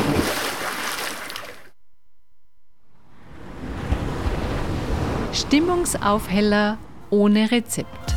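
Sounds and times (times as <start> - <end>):
waves washing at a lakeside: 0.1 - 1.7, 3.3 - 6.3
speech: 5.4 - 8.0.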